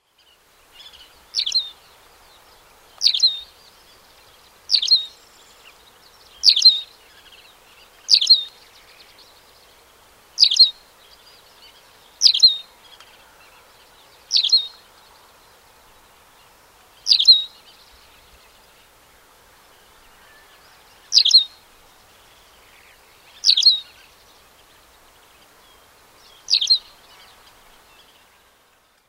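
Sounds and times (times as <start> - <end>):
tawny pipit: 0.9 - 1.8, 3.0 - 3.6, 4.7 - 5.2, 6.4 - 6.9, 8.1 - 8.6, 10.4 - 10.8, 12.2 - 12.7, 14.3 - 14.8, 17.0 - 17.6, 21.1 - 21.6, 23.4 - 24.0, 26.4 - 27.0.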